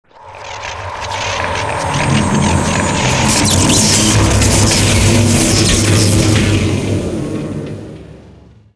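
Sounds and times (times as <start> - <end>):
short energy start effect: 1.7 - 6.9.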